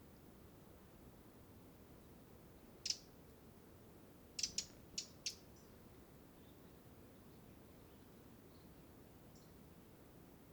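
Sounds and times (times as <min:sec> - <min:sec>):
steady background hiss: 0:00.0 - 0:10.5
Eurasian wren Troglodytes troglodytes giving sharp dry ticking calls: 0:02.8 - 0:03.1, 0:04.4 - 0:05.7.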